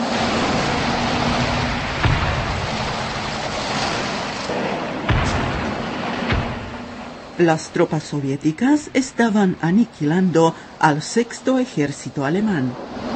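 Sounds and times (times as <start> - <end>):
cannon blasts: 0.2 - 7.4
tank fire: 0.2 - 7.4
continuous roaring battlefield din at the Battle of Stalingrad on the Volga River: 0.2 - 7.9
speech: 7.4 - 13.0.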